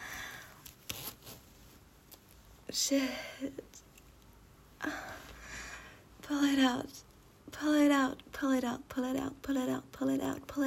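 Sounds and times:
soft rustling of fabric: 0.5 - 2.7
fumbling with a clothing zipper: 0.8 - 1.5
speech: 2.7 - 3.9, 6.3 - 10.6.

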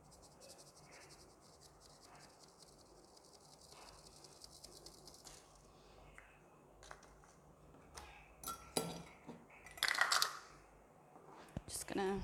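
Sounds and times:
dirty dishes and utensils clattering into a sink: 8.4 - 10.3.

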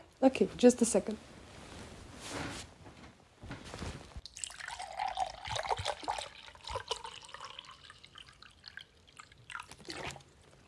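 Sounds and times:
speech: 0.2 - 1.3
rustling: 0.9 - 4.2
water pouring into a glass: 4.3 - 10.4.

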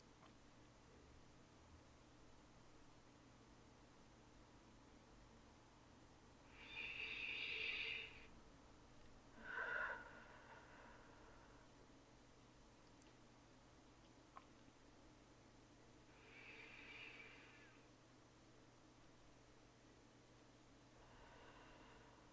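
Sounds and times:
faint hum: 0.0 - 22.3
slow breathing: 6.4 - 8.3, 9.3 - 11.8, 16.1 - 18.0, 20.9 - 22.3.

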